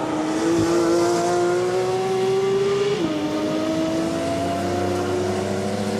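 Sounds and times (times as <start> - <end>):
sports car engine droning with gear change: 0.0 - 5.9
tires running over rumble strips with harsh buzzing rattle: 0.0 - 5.9.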